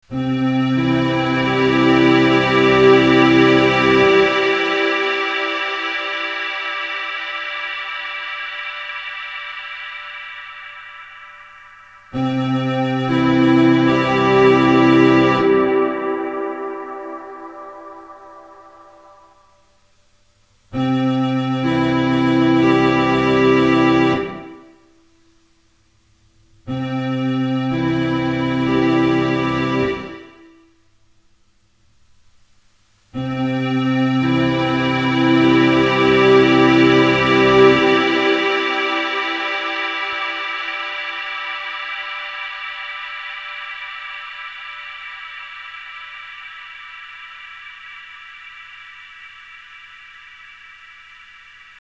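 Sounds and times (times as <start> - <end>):
organ in a room: 0.1 - 19.3, 20.8 - 24.7, 26.7 - 30.5, 33.2 - 46.4.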